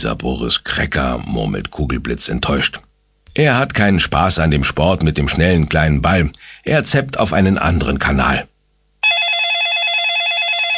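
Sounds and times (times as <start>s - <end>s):
speech: 0.0s - 8.5s
telephone ringing with electronic warbling trill: 9.0s - 10.7s.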